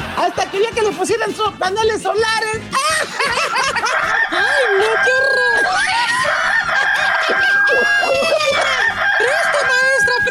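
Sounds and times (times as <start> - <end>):
laughter: 0.0 - 1.4, 2.7 - 10.2
speech: 0.3 - 6.0
excited vocal noise: 2.7 - 10.2
rooster crowing: 3.6 - 9.9.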